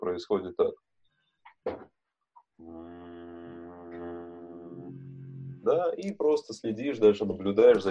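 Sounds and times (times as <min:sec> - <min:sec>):
speech: 0:00.1 - 0:00.9, 0:05.7 - 0:07.9
low hummed tone voiced softly on an exhale: 0:02.6 - 0:06.2.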